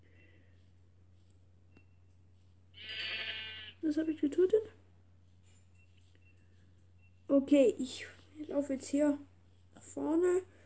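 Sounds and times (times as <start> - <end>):
steady low hum: 0.0 - 10.6
sheep bleating in a video game: 2.8 - 3.8
speech: 3.9 - 4.8, 7.5 - 9.3, 9.9 - 10.5.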